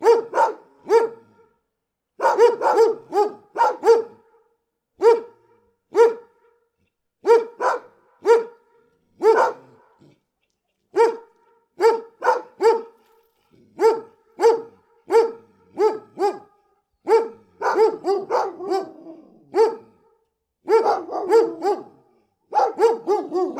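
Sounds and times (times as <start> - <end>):
big dogs barking deeply: 0.0 - 1.2, 2.2 - 4.2, 5.0 - 6.3, 7.2 - 8.6, 9.2 - 9.9, 10.9 - 13.0, 13.8 - 19.9, 20.7 - 23.5.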